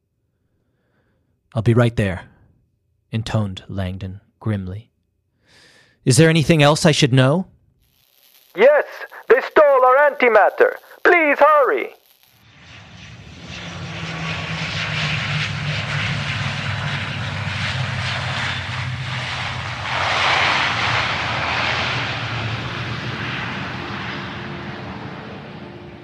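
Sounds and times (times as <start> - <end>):
speech: 1.5 - 2.3, 3.1 - 4.9, 5.5 - 7.5, 8.6 - 9.1, 10.1 - 12.0
airplane engine droning in flight: 8.6 - 26.0.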